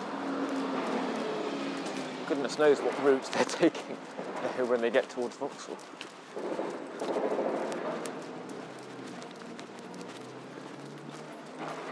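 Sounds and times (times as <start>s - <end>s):
buses moving along a street with engine rumble: 0.0s - 11.9s
speech: 2.3s - 7.2s.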